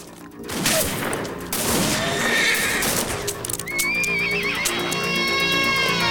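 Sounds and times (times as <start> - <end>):
gunfire as regulators shoot at a sheriff's men: 0.5 - 2.2
horses whinnying and neighing: 1.8 - 6.0.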